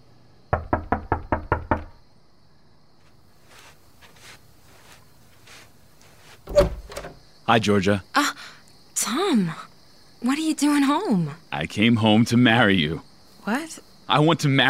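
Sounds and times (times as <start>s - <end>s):
quick firm knocks on a wooden door: 0.5s - 2.0s
rustling and shuffling movements: 3.0s - 7.3s
speech: 7.5s - 8.3s, 9.3s - 9.6s, 10.2s - 14.6s.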